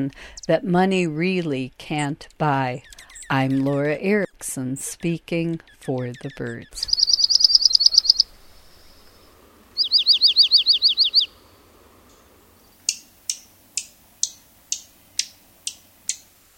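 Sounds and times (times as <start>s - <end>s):
speech: 0.0s - 7.0s
junco calls: 6.8s - 8.3s, 9.8s - 11.6s.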